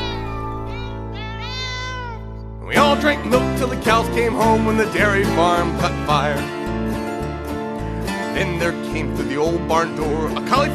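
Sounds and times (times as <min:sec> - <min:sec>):
cat meowing in a song about cats: 0:00.0 - 0:02.4
steady musical backing of a song about cats at a dairy farm: 0:00.0 - 0:10.7
speech: 0:02.8 - 0:06.6, 0:08.4 - 0:10.7.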